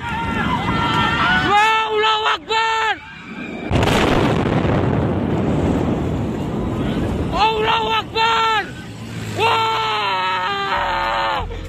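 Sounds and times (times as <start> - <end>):
people screaming and shouting: 0.0 - 3.9, 6.5 - 11.6
oil refinery explosion blast: 3.3 - 7.6.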